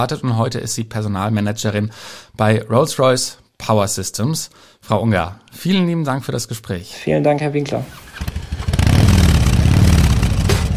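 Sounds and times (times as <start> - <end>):
speech: 0.0 - 8.4
Harley-Davidson motorcycle engine running with a deep throbbing rumble: 7.9 - 10.7.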